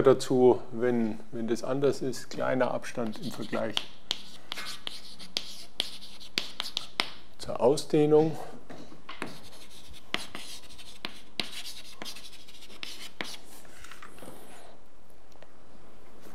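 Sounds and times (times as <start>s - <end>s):
speech: 0.0s - 4.0s, 7.4s - 8.5s
chalk writing on a board during a physics lecture: 3.0s - 7.2s, 9.2s - 13.6s.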